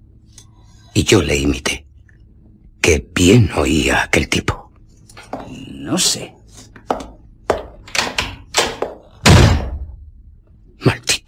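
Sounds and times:
speech: 1.0 - 1.9, 2.9 - 4.6, 5.5 - 6.4
door slamming shut: 7.9 - 9.9.

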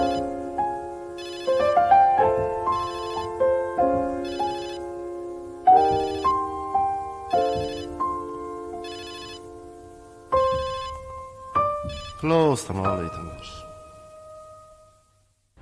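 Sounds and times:
mobile phone ringtone playing a bright electronic melody: 0.0 - 0.4, 1.1 - 4.9, 5.8 - 6.5, 7.2 - 8.2, 8.8 - 9.5, 10.4 - 11.1, 11.7 - 12.3
speech: 12.3 - 13.7.

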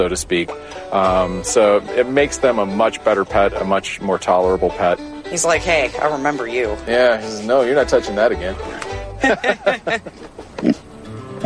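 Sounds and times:
speech: 0.0 - 11.4
laughter: 8.8 - 10.7
pig grunting: 10.5 - 11.4.

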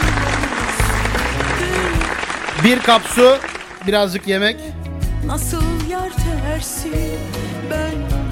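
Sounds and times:
audience applause: 0.0 - 4.2
speech: 2.6 - 8.2.

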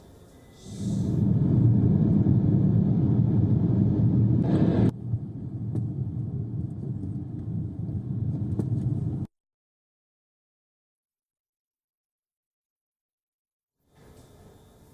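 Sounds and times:
tanks and military vehicles rumbling past: 0.8 - 9.3.

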